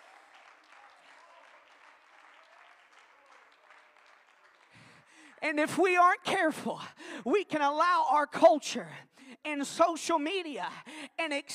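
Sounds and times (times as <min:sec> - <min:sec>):
large congregation clapping: 0:00.0 - 0:05.4
speech: 0:05.4 - 0:11.5.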